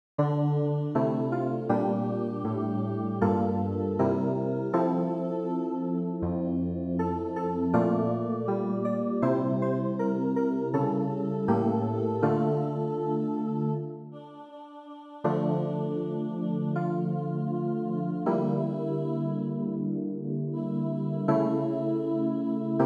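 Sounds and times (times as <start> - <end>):
keyboard: 0.2 - 22.8.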